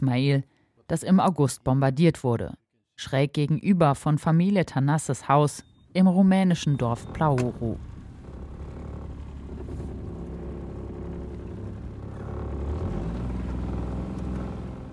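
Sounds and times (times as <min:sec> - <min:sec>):
speech: 0:00.0 - 0:07.9
small wooden family boat engine droning on the Danube: 0:05.6 - 0:14.9.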